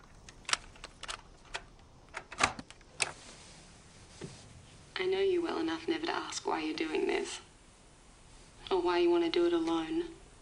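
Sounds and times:
plastic cassette tape clicking into a cassette player: 0.3s - 3.1s
speech: 5.0s - 7.5s, 8.7s - 10.2s.

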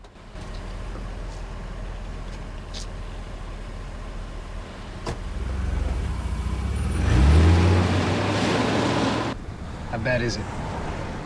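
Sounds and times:
low engine rumble inside a moving expensive car: 0.0s - 11.2s
road noise inside a moving expensive car: 0.0s - 11.2s
speech: 10.1s - 10.6s.

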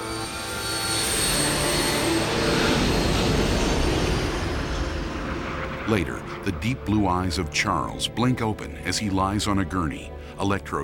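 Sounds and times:
jet engine roaring as aircraft flies away from hover: 0.0s - 8.0s
speech: 5.9s - 10.8s.

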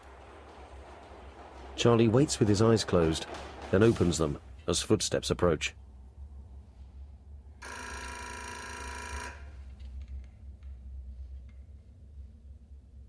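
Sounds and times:
faint low hum: 0.0s - 13.0s
speech: 1.8s - 5.8s
telephone ringing in a prison cell: 7.6s - 9.6s.

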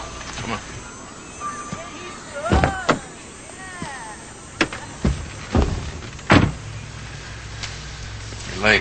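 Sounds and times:
speech: 0.5s - 0.7s
car door thumps and clunks: 2.5s - 3.0s, 4.6s - 6.7s.

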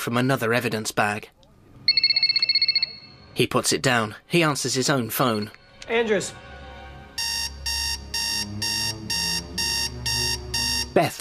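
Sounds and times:
speech: 0.0s - 1.4s, 3.4s - 6.5s, 11.0s - 11.2s
alarm clock bleeping beside a bed: 1.9s - 3.3s, 7.2s - 11.2s.

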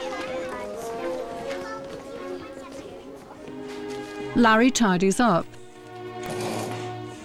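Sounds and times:
scuffling movement: 0.0s - 4.4s
group of children chattering: 0.0s - 5.4s
speech: 4.4s - 5.6s.

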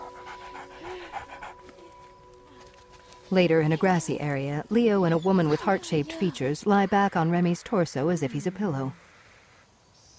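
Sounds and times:
mid-sized short-coated brown dog panting: 0.0s - 3.0s
speech: 3.3s - 9.0s.

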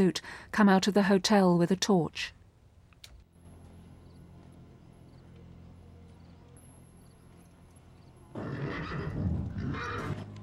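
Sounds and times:
speech: 0.0s - 2.4s
agitated chestnut horse neighing inside a trailer: 8.3s - 10.3s.

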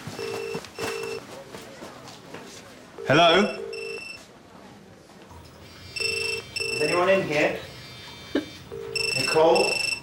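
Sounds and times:
mobile phone ringtone inside toilet cubicle: 0.0s - 1.2s, 3.0s - 4.2s, 5.6s - 10.0s
speech: 3.1s - 3.6s, 7.0s - 7.7s.

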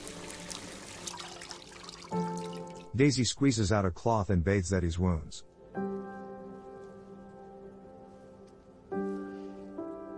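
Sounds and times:
water running from a tap into a kitchen sink: 0.0s - 2.9s
speech: 3.0s - 5.5s.

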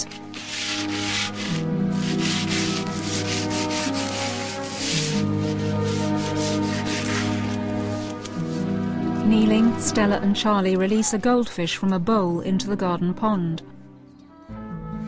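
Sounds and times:
sandpaper rubbing down a wooden window frame: 0.0s - 8.7s
speech: 9.8s - 13.7s.

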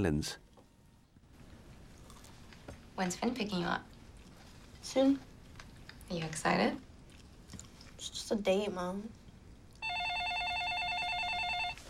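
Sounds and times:
speech: 0.0s - 0.5s, 3.0s - 3.9s, 4.8s - 5.3s, 6.1s - 6.9s, 8.0s - 9.2s
home telephone ringing with electronic warbling trill: 9.8s - 11.8s.

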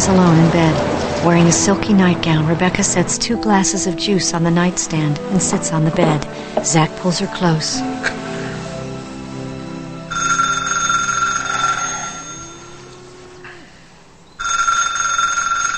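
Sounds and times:
speech: 0.0s - 8.2s
faint low tones: 0.0s - 15.7s
telephone ringing with a bright electronic trill: 10.1s - 13.1s, 14.4s - 15.7s.

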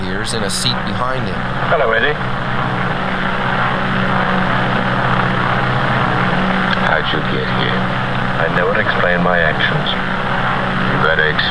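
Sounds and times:
propeller airplane engine droning in flight: 0.0s - 11.4s
speech: 0.2s - 3.3s, 7.1s - 10.1s, 11.0s - 11.4s.

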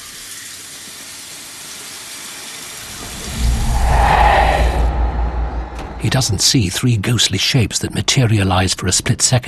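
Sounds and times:
water gushing from a wash basin tap: 0.0s - 2.8s
low rumble: 2.8s - 7.1s
speech: 6.1s - 9.4s.

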